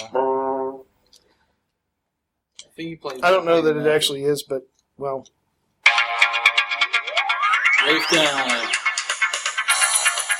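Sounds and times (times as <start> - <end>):
speech: 2.8 - 5.4, 7.8 - 8.9
Droid by Verizon Wireless phone ringtone: 5.9 - 10.3.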